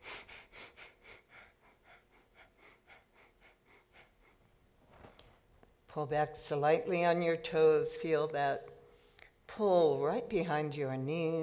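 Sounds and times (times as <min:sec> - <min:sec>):
rapid breath-of-fire yoga breathing: 0:00.0 - 0:04.5
speech: 0:06.0 - 0:08.7, 0:09.6 - 0:11.4.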